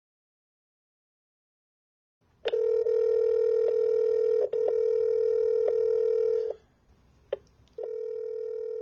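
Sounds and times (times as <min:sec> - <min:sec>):
telephone dial tone: 0:02.5 - 0:06.6, 0:07.8 - 0:08.8.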